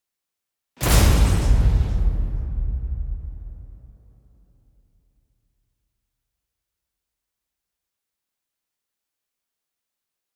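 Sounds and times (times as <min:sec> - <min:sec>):
gigantic glossy hit: 0:00.8 - 0:04.4.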